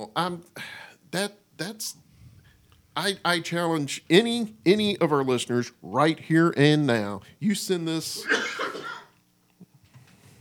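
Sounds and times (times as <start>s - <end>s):
speech: 0.0s - 2.0s, 3.0s - 8.6s
faint breathing: 0.6s - 1.0s
single harsh cough: 8.2s - 9.2s.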